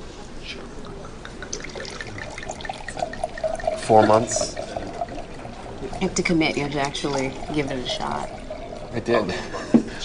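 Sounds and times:
liquid pouring into a glass: 0.4 - 10.0
speech: 3.9 - 4.6, 6.0 - 10.0.

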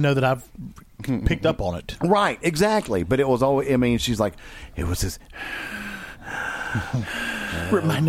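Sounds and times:
speech: 0.0 - 8.0
person imitating heavy raspy villain breathing: 4.4 - 8.0.

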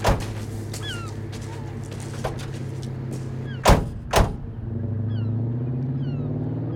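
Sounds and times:
car doors shutting as people get into a car: 0.0 - 1.0, 2.1 - 2.7, 3.5 - 4.6
low steady hum of an idling car engine: 0.0 - 6.7.

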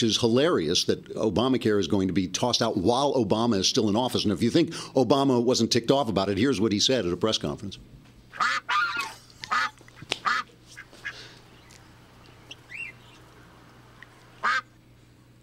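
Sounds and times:
speech: 0.0 - 8.8
faint steady hum: 0.0 - 15.4
duck quacking: 8.3 - 11.2, 14.4 - 14.7.

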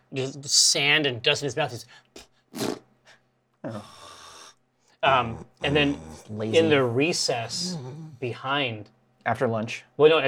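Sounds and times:
speech: 0.1 - 2.7, 3.6 - 4.1, 5.0 - 10.2
voice imitating snoring: 3.7 - 8.2.

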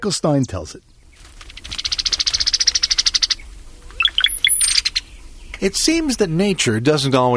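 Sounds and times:
speech: 0.0 - 0.9, 5.6 - 7.3
rapid even trill of bright chirps: 0.8 - 7.2
brown-headed cowbird calls with gurgling notes and high whistle: 1.0 - 6.8.

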